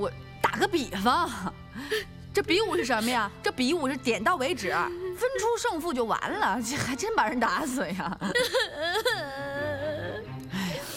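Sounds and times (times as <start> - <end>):
speech: 0.0 - 9.4
person crying loudly with wailing sobs: 8.2 - 10.2.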